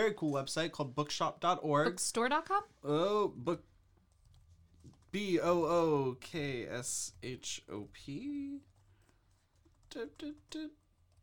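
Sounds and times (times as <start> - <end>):
speech: 0.0 - 3.7, 5.1 - 8.7, 9.9 - 10.8
computer keyboard typing: 3.9 - 5.7, 8.6 - 11.2.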